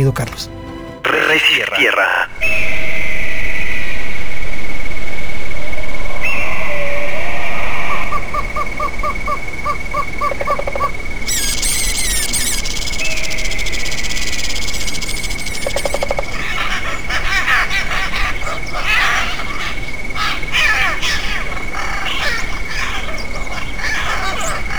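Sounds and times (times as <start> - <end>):
speech: 0.0 - 0.6, 1.2 - 3.0
constant hiss: 0.0 - 24.7
wild birds in open scrubland, possibly woodpeckers and roadrunners, calling: 0.0 - 24.7
steady high bird whistle: 2.3 - 8.8, 11.3 - 15.9.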